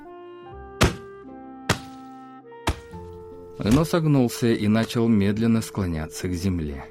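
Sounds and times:
club striking a man's body: 0.8 - 1.1, 1.7 - 2.1, 2.7 - 3.0
speech: 3.6 - 6.8.

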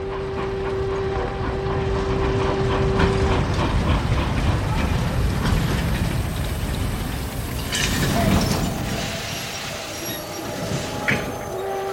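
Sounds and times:
train rolling in with heavy rumble: 0.0 - 11.9
train carriages clattering: 3.4 - 11.9
thin metallic train wheel squeals: 7.8 - 11.9.

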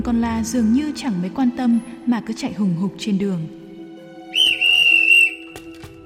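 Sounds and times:
speech: 0.0 - 3.6
police whistle blown loudly: 4.3 - 5.6.

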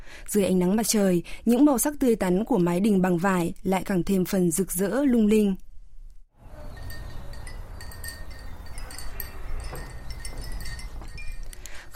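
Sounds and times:
outdoor noise: 0.0 - 11.9
speech: 0.2 - 5.7
fist-sized ceramic wind bells tinkling along a corridor: 6.5 - 11.9.

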